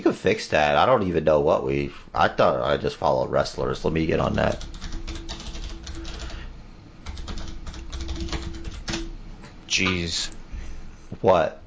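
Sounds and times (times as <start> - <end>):
faint steady hum: 0.0 - 11.6
speech: 0.1 - 4.8, 9.8 - 10.4, 11.2 - 11.6
rapid clattery keystrokes on a mechanical keyboard: 4.3 - 6.4, 7.0 - 9.1.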